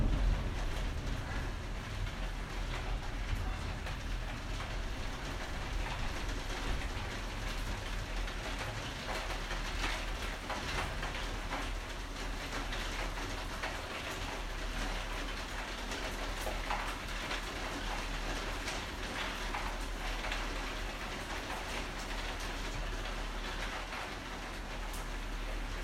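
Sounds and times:
steady deep rumble: 0.0s - 7.3s
hail pounding a skylight: 0.0s - 25.8s.

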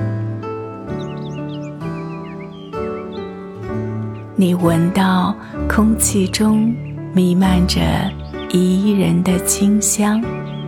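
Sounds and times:
birds chirping in a tree-lined setting: 0.4s - 10.6s
speech: 4.4s - 10.5s.

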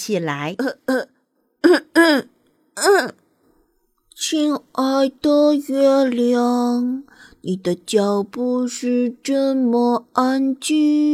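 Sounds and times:
speech: 0.0s - 3.2s, 4.2s - 11.1s
person clearing throat forcefully: 0.6s - 3.2s.

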